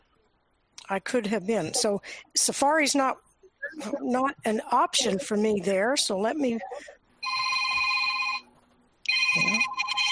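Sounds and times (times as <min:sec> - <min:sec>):
faint noise: 0:00.0 - 0:10.1
speech: 0:00.9 - 0:07.0
telephone ringing with an electronic trill: 0:07.2 - 0:10.1.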